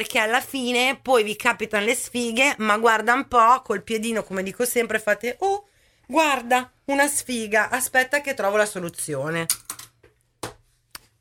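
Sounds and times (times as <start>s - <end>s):
speech: 0.0s - 9.7s
pen thrown onto a desk clattering: 9.5s - 10.2s.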